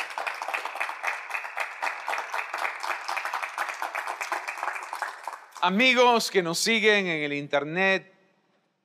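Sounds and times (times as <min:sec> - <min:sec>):
large crowd applauding: 0:00.0 - 0:06.0
speech: 0:05.6 - 0:08.1.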